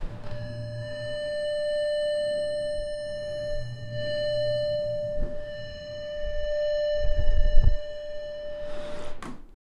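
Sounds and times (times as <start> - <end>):
elevator ding: 0.0 - 9.4.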